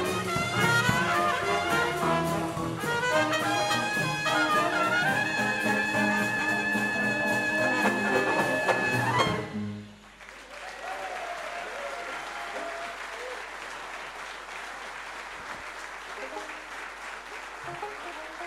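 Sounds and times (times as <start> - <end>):
brief burst of music: 0.0 - 10.3
audience applause: 10.0 - 18.4.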